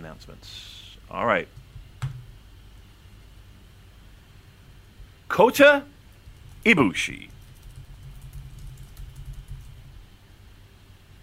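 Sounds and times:
steady low hum: 0.0s - 11.2s
speech: 0.1s - 1.6s, 5.3s - 5.9s, 6.6s - 7.3s
typing on a computer keyboard: 6.2s - 10.0s.

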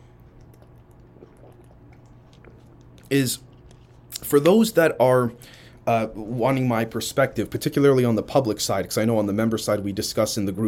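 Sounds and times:
soft swallow: 0.0s - 2.8s
person sipping water: 0.0s - 4.3s
wet mouth clicks: 0.0s - 4.3s
low steady hum: 0.0s - 10.6s
speech: 3.1s - 3.5s, 4.3s - 10.6s.

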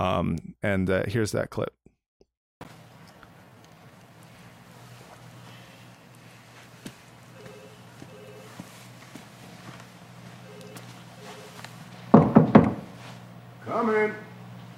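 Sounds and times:
speech: 0.0s - 1.9s, 13.8s - 14.3s
firm knocking on the wooden door of an office: 12.1s - 12.9s.

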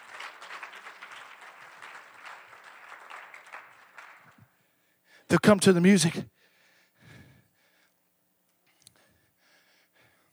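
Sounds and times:
church audience clapping in praise: 0.0s - 4.6s
speech: 5.3s - 6.4s.

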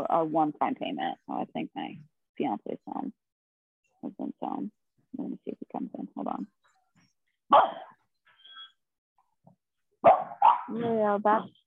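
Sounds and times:
speech: 0.1s - 3.2s, 4.0s - 6.7s, 7.5s - 7.8s, 10.0s - 11.6s
dogs barking: 7.5s - 7.9s, 10.0s - 10.7s.

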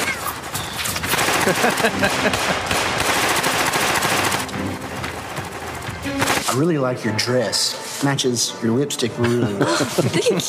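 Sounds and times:
rapid gunfire: 0.0s - 6.6s
laughter: 1.3s - 2.7s, 9.2s - 10.4s
speech: 1.5s - 2.8s, 6.6s - 10.4s.

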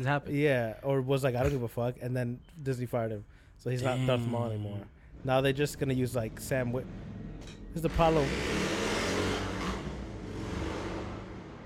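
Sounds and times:
speech: 0.0s - 7.1s, 7.7s - 8.6s
loud modded car engine revving past in Jersey: 5.2s - 11.6s.

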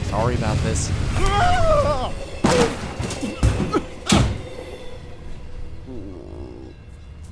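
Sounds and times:
moving train rumbling: 0.0s - 7.3s
door of a moving train sliding open: 2.4s - 4.8s.

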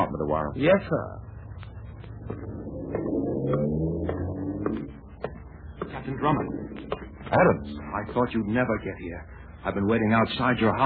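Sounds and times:
speech: 0.2s - 1.3s, 2.2s - 3.9s, 6.0s - 6.6s, 7.3s - 10.8s
car engine rumbling and revving as the car pulls away: 1.9s - 8.8s.

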